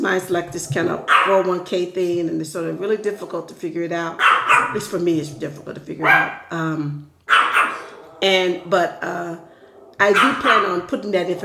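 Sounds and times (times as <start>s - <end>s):
speech: 0.0s - 7.4s, 8.2s - 11.4s
dogs barking: 1.0s - 1.5s, 4.2s - 5.0s, 6.0s - 6.6s, 7.2s - 8.8s, 9.4s - 11.0s.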